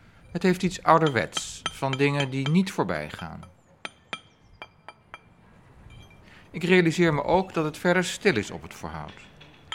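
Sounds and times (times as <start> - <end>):
speech: 0.4 - 3.6, 6.5 - 9.3
street paver tapping paving stones on a street in The Hague, Netherlands: 0.4 - 5.3, 6.6 - 9.7.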